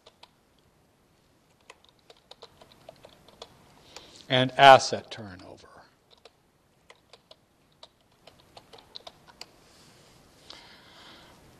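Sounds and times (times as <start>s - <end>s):
typing on a computer keyboard: 0.0s - 0.4s, 1.5s - 4.1s, 6.0s - 9.5s
speech: 4.3s - 5.7s.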